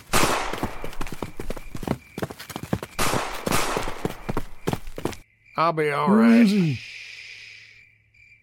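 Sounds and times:
gunshots in a radio drama shootout: 0.1s - 0.9s, 3.0s - 4.3s
speech: 5.6s - 6.9s.

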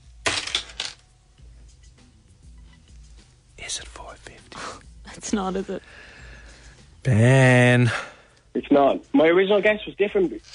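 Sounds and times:
coins of three different kinds rattling in a hand: 0.2s - 1.0s
speech: 3.7s - 6.1s, 7.0s - 10.5s.

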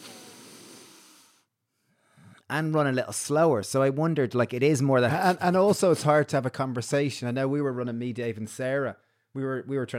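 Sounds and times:
person deep breathing through the nose: 0.0s - 2.5s
speech: 2.5s - 9.9s.

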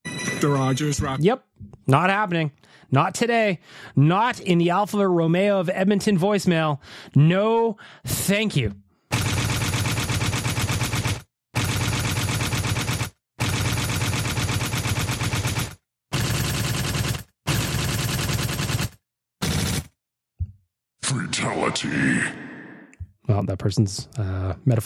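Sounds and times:
speech: 0.4s - 8.8s, 21.8s - 22.4s, 23.3s - 24.8s
automatic gunfire bursts as a sound effect: 9.1s - 19.9s.

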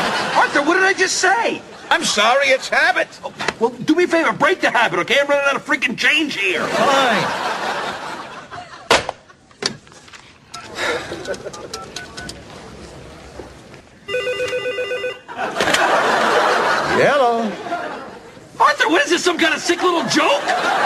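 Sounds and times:
laughter: 0.0s - 3.4s, 6.5s - 9.6s, 10.5s - 12.2s, 15.3s - 20.8s
speech: 0.6s - 7.8s, 11.3s - 12.0s, 17.0s - 17.6s, 18.6s - 20.8s
telephone ringing with a trilling bell: 14.1s - 15.4s.

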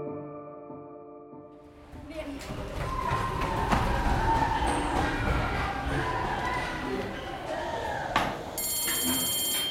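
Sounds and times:
indistinct voices: 1.7s - 9.2s
school bell ringing: 8.6s - 9.6s.

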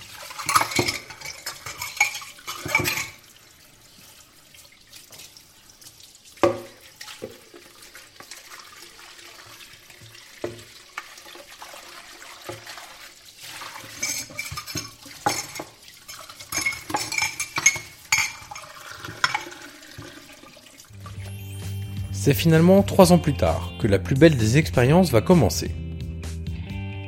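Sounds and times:
cutlery and pots clinking in a restaurant kitchen sink: 0.0s - 3.2s, 13.6s - 20.2s
running water at a sink: 0.0s - 23.6s
speech: 22.3s - 25.8s.

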